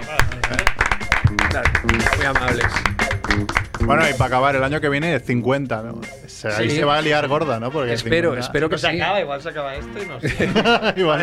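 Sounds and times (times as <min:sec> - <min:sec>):
small group clapping: 0:00.0 - 0:04.3
speech: 0:01.8 - 0:11.2
laughter: 0:10.2 - 0:11.2.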